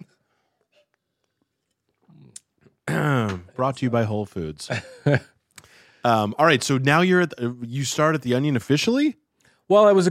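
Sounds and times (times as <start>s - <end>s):
person sipping soda during a water break: 0.6s - 2.8s
speech: 3.0s - 5.4s, 6.0s - 10.0s.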